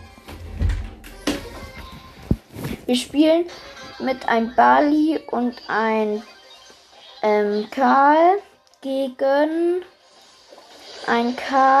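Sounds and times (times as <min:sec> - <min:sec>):
door being pushed shut with a solid thud: 0:00.4 - 0:01.8
speech: 0:02.9 - 0:06.3, 0:07.2 - 0:09.9, 0:11.1 - 0:11.7.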